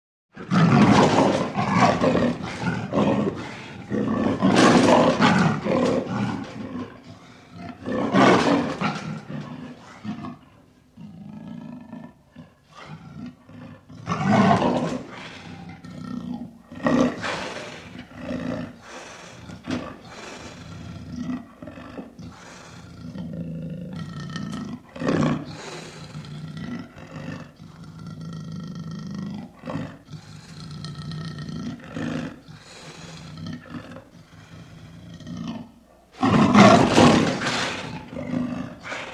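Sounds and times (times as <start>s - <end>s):
leopard roaring and growling in a cage: 0.4s - 39.1s.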